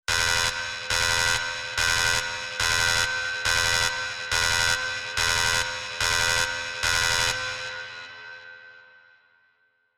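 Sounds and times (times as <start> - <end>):
evacuation alarm: 0.1 - 7.7.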